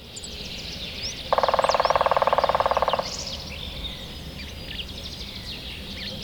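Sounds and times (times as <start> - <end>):
Grey-headed woodpecker Picus canus drumming: 1.2 - 4.1.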